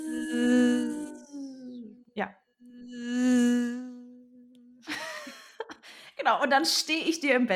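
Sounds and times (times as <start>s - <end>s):
voice imitating a mosquito's high droning whine: 0.0s - 2.1s, 2.7s - 4.8s
speech: 2.2s - 3.2s, 6.3s - 7.5s
laughter: 4.9s - 5.8s.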